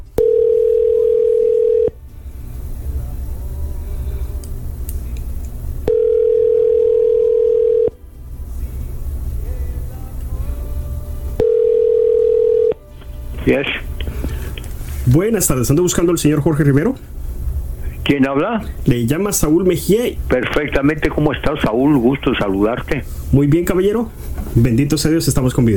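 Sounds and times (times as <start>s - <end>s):
low hum: 0.0s - 25.7s
telephone ringback tone while a call is being placed: 0.2s - 2.0s, 5.9s - 8.0s, 11.4s - 12.8s
speech: 15.1s - 17.2s, 18.1s - 25.7s.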